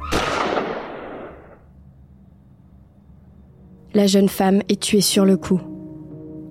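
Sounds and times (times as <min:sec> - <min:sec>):
single loud pistol shot with long tail: 0:00.0 - 0:01.6
speech: 0:03.9 - 0:05.7.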